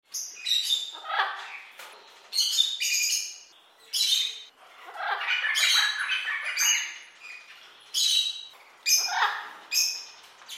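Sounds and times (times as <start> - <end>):
parrots: 0.1 - 10.5.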